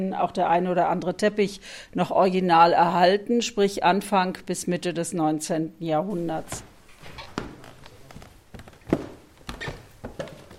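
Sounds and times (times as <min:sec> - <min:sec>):
speech: 0:00.0 - 0:07.2
footsteps thudding up a wooden plank staircase in a house: 0:06.3 - 0:10.5.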